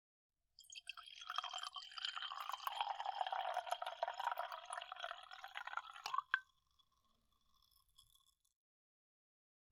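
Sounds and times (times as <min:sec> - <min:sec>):
wine pouring into a glass: 0:00.6 - 0:06.5.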